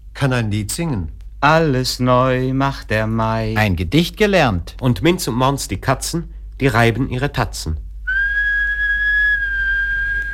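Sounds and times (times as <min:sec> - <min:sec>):
constant low hum: 0:00.0 - 0:10.3
speech: 0:00.2 - 0:07.8
person whistling a sustained clear tone: 0:08.1 - 0:10.3.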